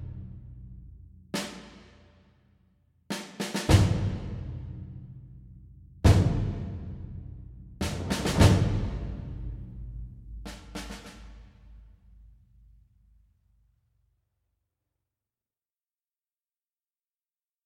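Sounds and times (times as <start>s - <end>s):
concert drums: 1.4s - 1.9s, 3.1s - 4.5s, 7.8s - 11.8s.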